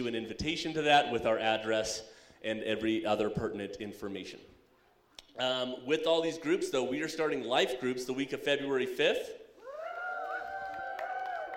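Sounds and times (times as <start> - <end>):
speech: 0.0 - 4.6, 5.4 - 9.4
church audience cheering for the youth group: 9.6 - 11.5
sustained high whoop: 9.6 - 11.5.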